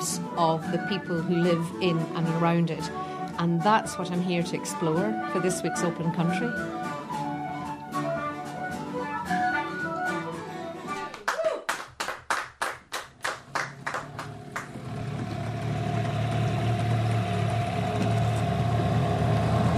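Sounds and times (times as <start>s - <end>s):
music: 0.0s - 11.4s
speech: 0.4s - 6.9s
sharp rhythmic claps: 11.1s - 14.8s
small open boat's outboard motor droning: 14.0s - 19.7s.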